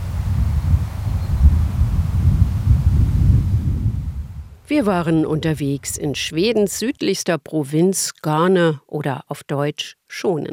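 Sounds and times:
rustling grass: 0:00.0 - 0:05.7
sea surf: 0:00.0 - 0:06.5
low rumbling wind buffeting the microphone outdoors: 0:00.0 - 0:06.9
speech: 0:04.7 - 0:10.5.

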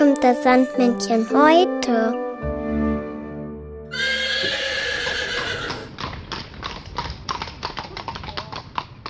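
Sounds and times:
speech: 0:00.2 - 0:02.2
horse giving a loud shrill whinny: 0:03.9 - 0:06.0
horse hooves clip-clopping: 0:04.4 - 0:09.0.

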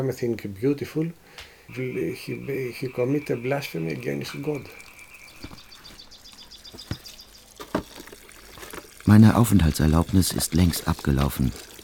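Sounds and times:
speech: 0:00.0 - 0:05.6, 0:09.1 - 0:11.7
water pouring and splashing as someone washes outdoors in sunshine: 0:03.3 - 0:11.8.

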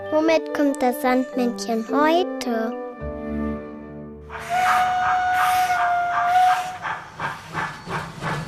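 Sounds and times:
speech: 0:00.2 - 0:02.8
steam locomotive whistle: 0:04.3 - 0:07.0
hissing steam from a steam locomotive: 0:04.3 - 0:08.4
steam locomotive chuffing as it gets moving: 0:04.3 - 0:08.4.

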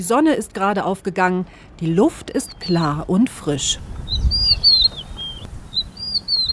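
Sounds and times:
speech: 0:00.0 - 0:04.3
wind through shrubs in Nairobi National Park: 0:00.0 - 0:06.5
birds chirping in Nairobi National Park just after sunrise: 0:02.1 - 0:06.5.

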